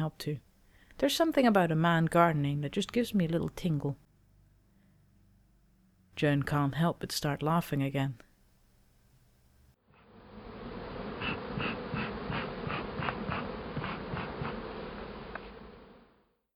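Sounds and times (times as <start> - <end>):
speech: 0.0 - 4.0, 6.2 - 8.3
many honeybees buzzing around a rooftop hive: 9.9 - 16.2.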